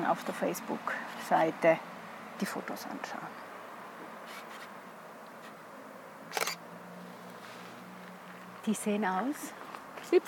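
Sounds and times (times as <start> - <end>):
speech: 0.0 - 3.5, 8.7 - 10.2
steady hiss: 0.0 - 10.2
camera shutter click in a botanical garden: 6.3 - 6.6.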